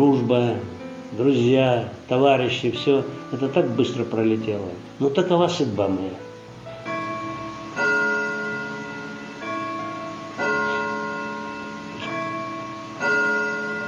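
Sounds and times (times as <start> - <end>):
speech: 0.0 - 6.3
clock striking the hour with bell-like chimes: 6.8 - 13.8.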